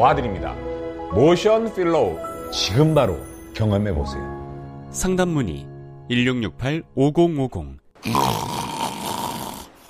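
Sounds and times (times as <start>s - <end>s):
speech: 0.0s - 8.4s
loud rasping snore with a rattling texture: 8.0s - 9.8s.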